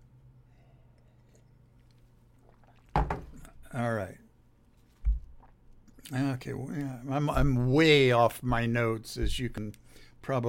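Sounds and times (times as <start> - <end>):
room hum: 0.0 - 10.4
person sipping orange juice: 0.5 - 3.6, 5.2 - 6.2
speech: 3.7 - 4.2, 6.1 - 10.4.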